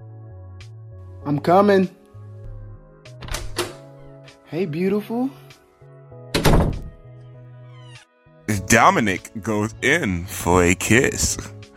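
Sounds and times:
speech: 0:01.2 - 0:02.0, 0:04.5 - 0:05.4, 0:08.5 - 0:11.6
dull knocks on a door: 0:06.4 - 0:07.0.

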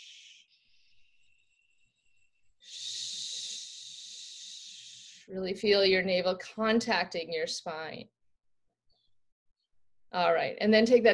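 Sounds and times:
long shh exhales through pursed lips during a breathing exercise: 0:00.0 - 0:01.3, 0:02.6 - 0:05.3
speech: 0:05.3 - 0:08.2, 0:10.1 - 0:11.1.

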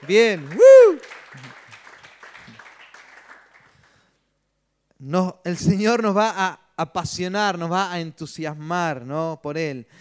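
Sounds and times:
church audience applauding: 0:00.0 - 0:04.0
speech: 0:00.1 - 0:01.5, 0:05.0 - 0:09.9
person shouting: 0:00.6 - 0:01.0.

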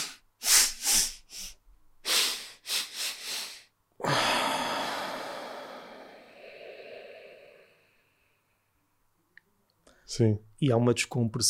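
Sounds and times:
quick repeated nasal inhalations in a breathing exercise: 0:00.0 - 0:08.0
long steady breathy rush: 0:00.0 - 0:08.5
speech: 0:10.2 - 0:11.4.

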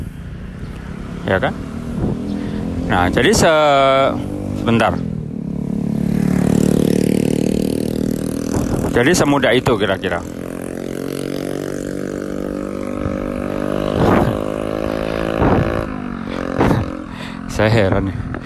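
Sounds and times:
motorcycle with loud aftermarket exhaust revving: 0:00.0 - 0:18.4
speech: 0:01.2 - 0:02.2, 0:02.9 - 0:05.1, 0:09.0 - 0:10.4, 0:17.6 - 0:18.3
man laughing: 0:16.1 - 0:18.4.

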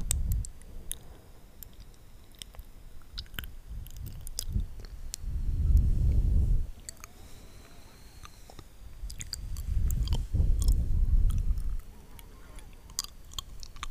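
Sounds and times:
wet mouth sounds with lipgloss being applied: 0:00.0 - 0:05.3, 0:08.2 - 0:11.9, 0:12.6 - 0:13.8
soft low breaths: 0:00.0 - 0:13.8.

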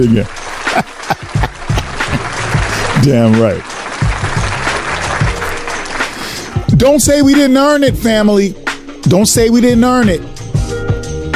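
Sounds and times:
speech: 0:00.0 - 0:00.9, 0:03.0 - 0:03.7, 0:06.8 - 0:10.3
audience clapping: 0:00.0 - 0:06.7
laughter: 0:00.4 - 0:03.2.

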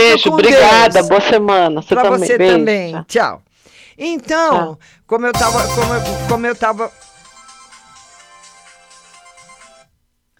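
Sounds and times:
speech: 0:00.1 - 0:07.0
phone ringtone with incoming call: 0:05.4 - 0:09.8.

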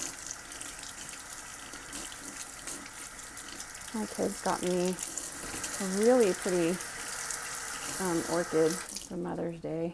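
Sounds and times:
water running from a tap to water an orchid houseplant: 0:00.0 - 0:09.2
speech: 0:03.9 - 0:05.2, 0:05.8 - 0:06.9, 0:08.0 - 0:09.9.

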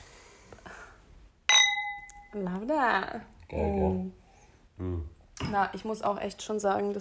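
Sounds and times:
two wine glasses clinking in a toast: 0:01.5 - 0:02.4
speech: 0:02.3 - 0:04.2, 0:04.8 - 0:06.9.

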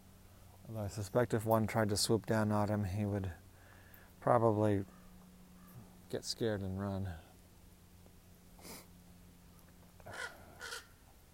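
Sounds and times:
low steady hum: 0:00.0 - 0:11.3
speech: 0:00.7 - 0:03.4, 0:04.2 - 0:05.0, 0:06.1 - 0:07.2
crows cawing: 0:04.8 - 0:06.0, 0:10.0 - 0:11.0.

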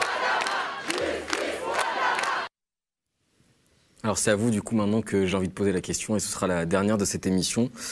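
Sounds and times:
large protest crowd in France shouting in unison against police violence: 0:00.0 - 0:02.5
speech: 0:04.1 - 0:07.9.

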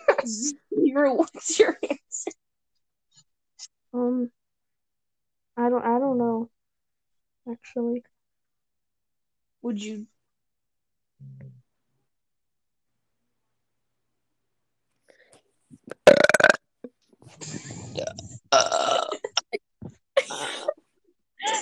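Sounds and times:
speech: 0:00.2 - 0:02.4, 0:03.9 - 0:04.4, 0:05.6 - 0:06.5, 0:07.5 - 0:08.1, 0:09.6 - 0:10.1
loud drawn-out rumbling burps: 0:16.0 - 0:16.7, 0:17.7 - 0:19.6.

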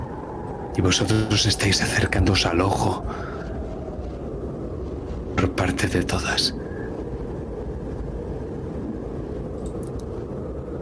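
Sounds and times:
powerful hurricane wind roaring: 0:00.0 - 0:10.8
speech: 0:00.8 - 0:03.4, 0:05.4 - 0:06.6.

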